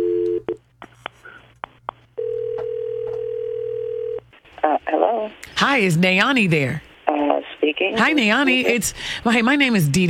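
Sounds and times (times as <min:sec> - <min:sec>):
telephone ringback tone while placing a call: 0:02.2 - 0:04.2
speech: 0:04.9 - 0:06.9, 0:07.7 - 0:10.0.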